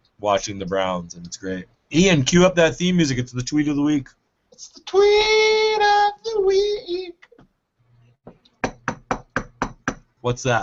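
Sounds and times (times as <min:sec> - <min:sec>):
speech: 0:00.2 - 0:05.5, 0:06.3 - 0:07.1, 0:10.2 - 0:10.6
firm loud knocking on a door: 0:08.6 - 0:10.1.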